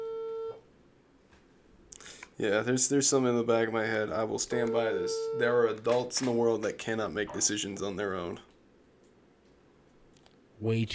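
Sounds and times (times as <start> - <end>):
phone call ringing tone: 0.0 - 0.6, 4.7 - 5.6
hiss: 0.6 - 10.9
speech: 2.4 - 8.5, 10.6 - 10.9.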